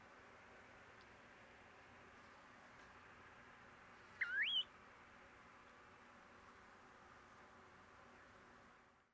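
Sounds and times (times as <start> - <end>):
soft steady background hiss: 0.0 - 9.1
snowy plover whistled call: 4.2 - 4.7.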